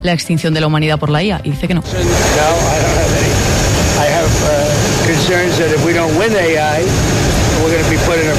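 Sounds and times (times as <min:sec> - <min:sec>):
speech: 0:00.0 - 0:08.3
airplane engine roar: 0:01.4 - 0:08.3.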